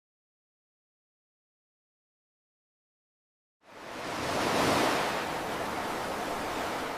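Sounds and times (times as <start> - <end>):
ocean surf roaring with a breaking wave: 3.6 - 6.9.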